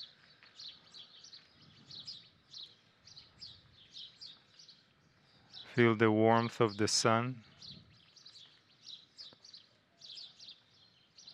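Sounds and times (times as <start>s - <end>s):
birds chirping: 0.0s - 11.3s
speech: 5.8s - 7.5s.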